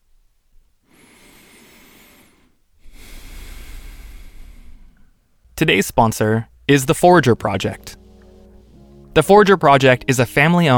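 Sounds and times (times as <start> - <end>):
deep breath drawn and released: 0.8 - 5.5, 8.0 - 9.1
speech: 5.6 - 8.0, 9.2 - 10.7.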